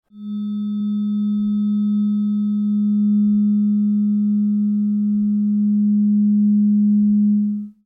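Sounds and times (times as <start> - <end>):
207.36 Hz diapason tone: 0.1 - 7.8.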